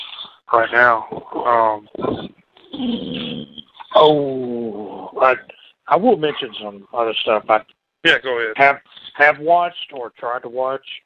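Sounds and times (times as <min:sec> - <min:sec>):
speech: 0:00.5 - 0:11.0
dog growling and whimpering: 0:02.0 - 0:03.8.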